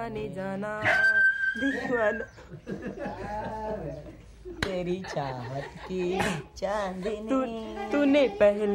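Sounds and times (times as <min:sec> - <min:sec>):
dog yelping and howling after being kicked: 0:00.8 - 0:02.2
laughter: 0:01.6 - 0:08.6.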